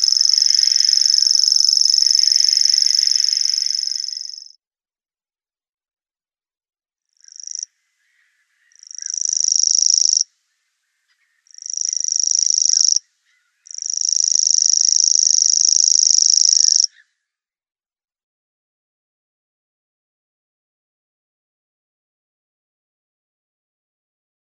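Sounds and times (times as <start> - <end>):
common grasshopper warbler song: 0.0 - 4.6, 7.2 - 10.3, 11.2 - 17.0.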